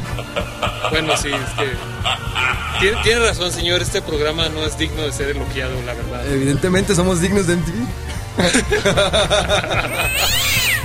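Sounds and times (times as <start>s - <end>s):
laughter: 0.0s - 3.9s, 8.4s - 10.6s
speech: 0.2s - 10.7s
cat meowing and caterwauling: 9.9s - 10.8s.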